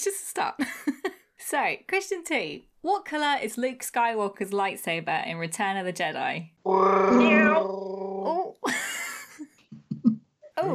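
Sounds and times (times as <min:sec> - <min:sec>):
speech: 0:00.0 - 0:08.8
person imitating a cat with a wavering yowl: 0:06.7 - 0:07.7.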